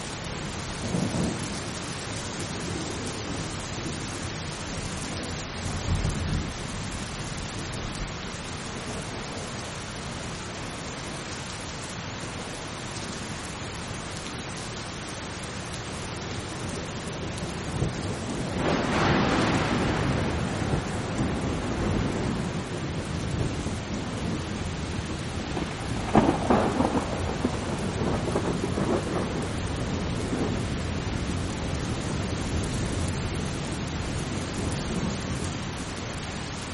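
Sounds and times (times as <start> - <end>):
steady rain in a thunderstorm: 0.0 - 36.7
low thunder rumbles: 0.4 - 1.8, 2.6 - 8.0, 16.6 - 35.6
roll of thunder: 17.7 - 31.4
thunder crack: 18.6 - 22.7, 25.5 - 29.5.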